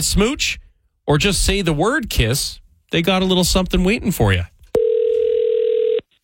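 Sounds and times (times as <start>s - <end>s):
speech: 0.0s - 4.5s
telephone dial tone: 4.8s - 6.1s.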